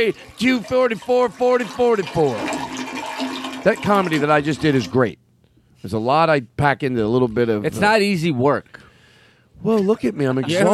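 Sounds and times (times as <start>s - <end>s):
speech: 0.0s - 2.7s, 3.6s - 5.2s, 5.8s - 8.8s, 9.6s - 10.7s
toilet flushing: 0.0s - 5.0s
laughter: 9.8s - 10.7s.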